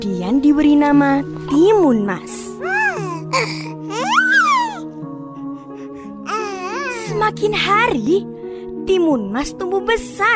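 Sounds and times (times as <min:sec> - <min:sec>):
speech: 0:00.0 - 0:02.4, 0:07.2 - 0:08.3, 0:08.9 - 0:10.3
baby babbling and crying: 0:02.5 - 0:07.6.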